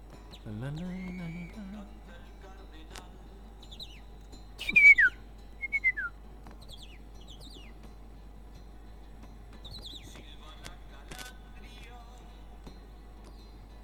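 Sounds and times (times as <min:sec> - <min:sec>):
whistled calls imitating a great kiskadee: 0:00.7 - 0:01.8, 0:04.6 - 0:06.1.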